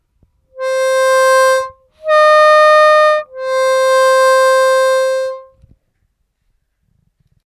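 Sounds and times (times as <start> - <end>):
harmonica overbend: 0.5 - 5.5.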